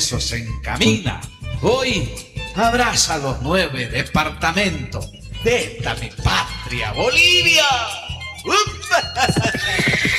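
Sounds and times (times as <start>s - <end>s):
speech: 0.0s - 10.1s
horse galloping hoofbeats: 9.2s - 10.1s
horse whinnying: 9.4s - 10.1s.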